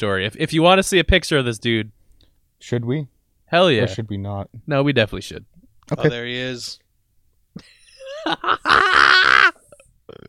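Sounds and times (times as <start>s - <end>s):
speech: 0.0s - 2.0s, 2.6s - 6.8s
short vocal bursts: 3.8s - 4.0s
laughter: 7.6s - 9.5s
loud burp: 8.7s - 10.2s.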